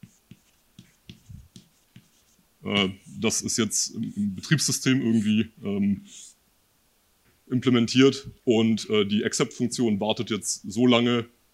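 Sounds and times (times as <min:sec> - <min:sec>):
pen writing a note by hand: 0:00.0 - 0:02.4
speech: 0:02.6 - 0:06.3, 0:07.5 - 0:11.4.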